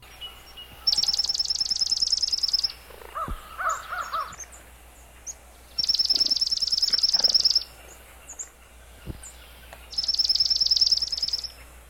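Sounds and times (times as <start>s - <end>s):
faint bird calls: 0.0s - 11.8s
swamp sparrow slow musical trill: 0.2s - 4.5s, 5.2s - 7.7s, 9.9s - 11.6s.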